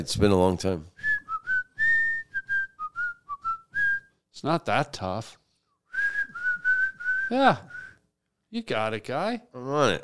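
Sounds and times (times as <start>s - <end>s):
speech: 0.0s - 1.0s, 4.4s - 5.4s, 7.3s - 7.8s, 8.5s - 10.0s
person whistling a short simple tune: 1.0s - 4.2s, 5.9s - 8.0s.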